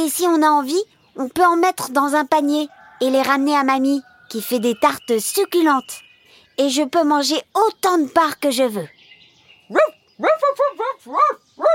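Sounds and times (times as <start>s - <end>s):
speech: 0.0s - 9.0s, 9.7s - 11.7s
big white and beige dog barking: 9.7s - 11.7s.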